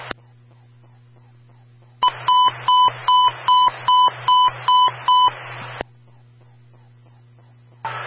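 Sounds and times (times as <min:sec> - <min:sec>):
low steady hum: 0:00.0 - 0:08.0
open radio hiss on a fire control radio channel: 0:00.0 - 0:08.0
high electronic beeps from an emergency transmission phone test: 0:02.0 - 0:05.3.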